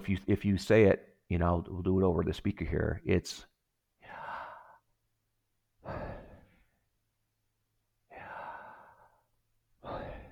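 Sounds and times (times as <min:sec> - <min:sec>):
speech: 0:00.0 - 0:03.5
slow breathing in and out: 0:04.0 - 0:05.0, 0:05.8 - 0:06.9, 0:08.0 - 0:10.3.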